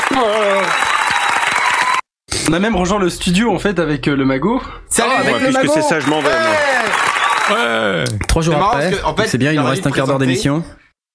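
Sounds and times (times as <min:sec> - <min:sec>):
applause: 0:00.0 - 0:02.1, 0:05.9 - 0:07.8
speech: 0:00.2 - 0:00.8, 0:02.5 - 0:10.8.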